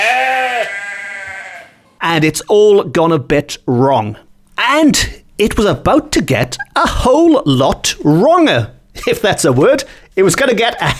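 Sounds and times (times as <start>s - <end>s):
goat bleating: 0.0s - 1.8s
speech: 2.2s - 10.9s.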